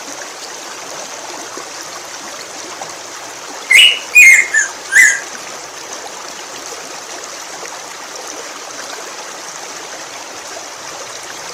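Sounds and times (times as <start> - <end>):
black-throated grosbeak whistling: 3.7 - 5.3.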